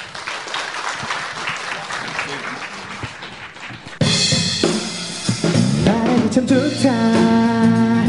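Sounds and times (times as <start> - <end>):
audience applause: 0.0 - 4.2
live music: 2.9 - 8.0.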